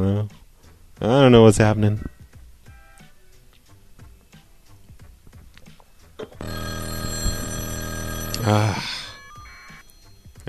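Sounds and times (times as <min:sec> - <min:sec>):
speech: 0:01.0 - 0:02.1, 0:08.5 - 0:09.0
loud harmonically rich telephone bell ringing: 0:06.4 - 0:10.4.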